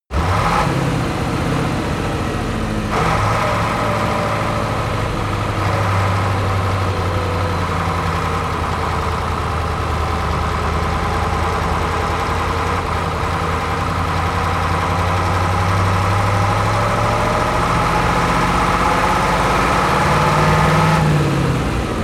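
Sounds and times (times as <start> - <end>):
Ural 4320 truck decelerating and accelerating: 0.1 - 22.0.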